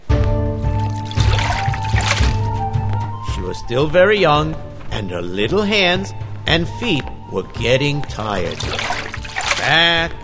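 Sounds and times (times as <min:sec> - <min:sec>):
water pouring and splashing into a pail: 0:00.7 - 0:02.5, 0:08.4 - 0:09.8
speech: 0:03.6 - 0:09.0, 0:09.6 - 0:10.2.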